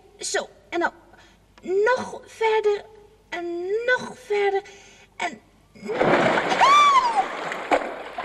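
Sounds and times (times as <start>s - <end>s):
speech: 0.2s - 1.0s, 1.6s - 6.8s
person falling into a deep well of water: 5.9s - 8.2s.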